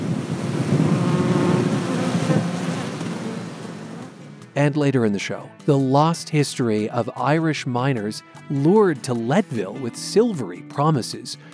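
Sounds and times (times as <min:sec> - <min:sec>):
swarm of honeybees buzzing: 0:00.0 - 0:04.6
speech: 0:04.6 - 0:11.5.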